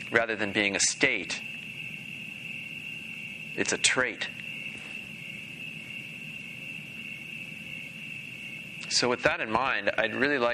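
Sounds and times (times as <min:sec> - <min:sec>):
high-pitched chorus of crickets chirping: 0:00.0 - 0:10.5
soft low rumble of ambient noise: 0:00.0 - 0:10.5
speech: 0:00.1 - 0:01.6, 0:03.6 - 0:04.4, 0:09.0 - 0:10.5.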